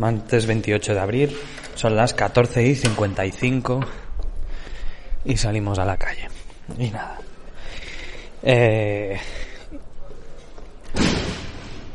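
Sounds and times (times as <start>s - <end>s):
speech: 0.0s - 4.0s, 5.2s - 7.3s, 8.4s - 9.8s
door slamming shut: 10.9s - 11.9s.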